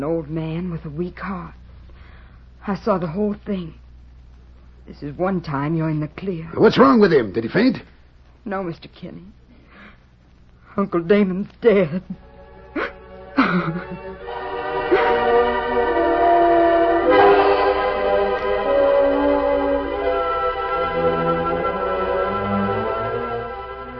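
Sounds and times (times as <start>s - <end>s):
speech: 0.0s - 1.6s, 2.6s - 3.8s, 4.9s - 9.4s, 10.8s - 12.3s, 13.5s - 14.3s
train rumbling past a ravine by a railroad right-of-way: 14.0s - 23.9s.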